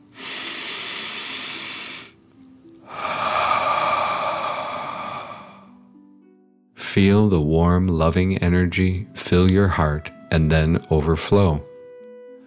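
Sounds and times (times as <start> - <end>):
deep breath in and out during a guided breathing exercise: 0.0 - 2.2, 2.8 - 5.9
speech: 7.0 - 11.7.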